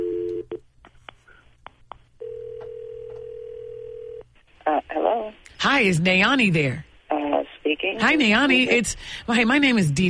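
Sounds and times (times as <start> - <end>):
telephone tones while a call is placed: 0.0 - 0.6, 2.2 - 4.2
speech: 5.2 - 6.9, 8.0 - 10.0.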